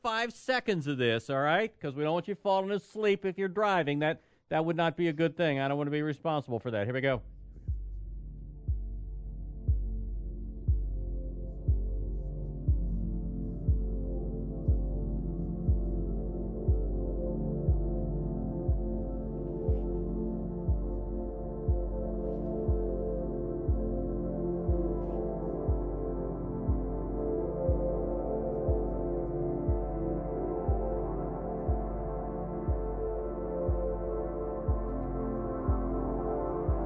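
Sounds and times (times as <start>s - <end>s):
speech: 0.0s - 7.4s
slow steady pounding beat: 7.2s - 36.8s
calm ambient music track with warm low drones: 7.3s - 36.8s.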